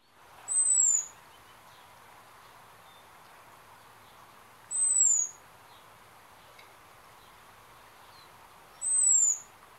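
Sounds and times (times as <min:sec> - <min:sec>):
soft background hiss: 0:00.0 - 0:09.7
American Robin seet calls: 0:00.5 - 0:01.2, 0:04.7 - 0:05.4, 0:08.8 - 0:09.5.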